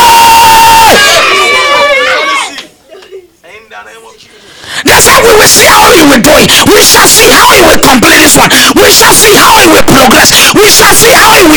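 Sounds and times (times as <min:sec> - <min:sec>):
large audience shouting in unison: 0:00.0 - 0:02.5
speech: 0:05.5 - 0:11.5.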